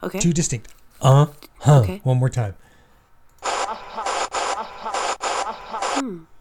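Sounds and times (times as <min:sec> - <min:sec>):
speech: 0:00.0 - 0:02.6, 0:06.0 - 0:06.3
harsh bursts of broadband radio static: 0:03.4 - 0:06.0.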